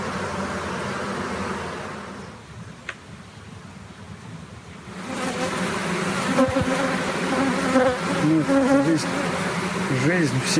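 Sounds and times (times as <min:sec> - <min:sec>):
honeybees buzzing: 0:00.0 - 0:02.4, 0:04.8 - 0:10.5
speech: 0:08.3 - 0:09.3, 0:10.0 - 0:10.5.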